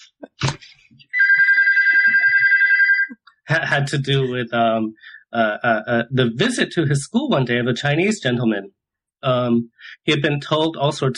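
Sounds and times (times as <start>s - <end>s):
telephone ringing with a loud steady trilling tone: 1.2s - 3.2s
speech: 3.5s - 11.1s.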